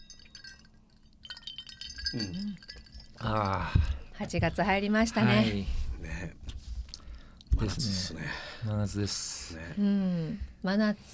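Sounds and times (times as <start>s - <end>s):
glasses clinking in a toast: 0.0s - 5.5s
speech: 2.1s - 6.4s, 7.6s - 11.1s.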